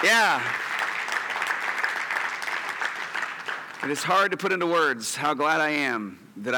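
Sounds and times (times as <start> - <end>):
speech: 0.0 - 0.7, 3.8 - 6.5
church audience applauding at a morning service: 0.0 - 4.4.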